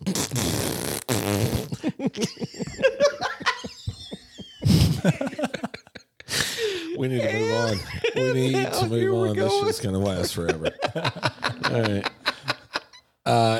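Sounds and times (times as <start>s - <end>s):
voice imitating a loose flappy fart with wet raspberry bursts: 0.0s - 1.8s
laughter: 1.7s - 8.8s, 9.8s - 13.0s
speech: 2.0s - 3.2s, 5.0s - 5.3s, 7.0s - 12.2s.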